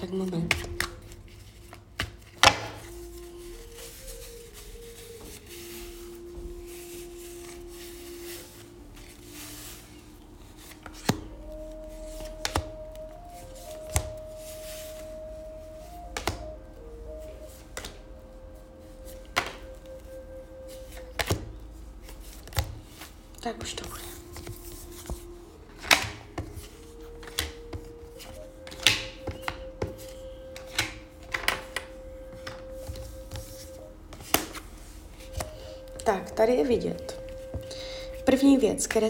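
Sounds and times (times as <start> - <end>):
speech: 0.0 - 0.8, 38.8 - 39.0
tarot cards being shuffled and handled: 0.0 - 16.6, 17.4 - 18.1, 19.0 - 38.4
quiet sustained musical drone: 0.0 - 39.0
sharp slaps and taps of tarot cards: 0.4 - 2.9, 12.2 - 12.8, 16.2 - 16.5, 17.7 - 18.0, 19.4 - 19.6, 21.1 - 21.5, 25.8 - 26.5, 28.7 - 30.0, 34.1 - 34.6.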